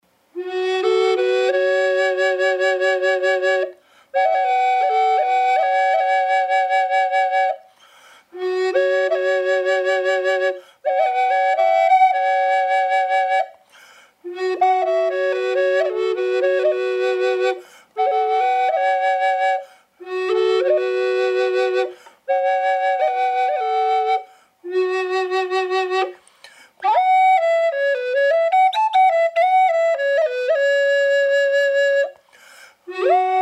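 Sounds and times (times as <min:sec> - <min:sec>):
dry flutes in F-sharp minor: 0:00.2 - 0:33.4.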